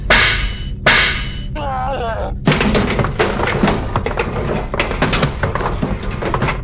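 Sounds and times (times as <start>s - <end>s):
thrashing and clattering: 0.0s - 1.6s, 2.3s - 6.6s
creature squealing: 1.6s - 2.4s.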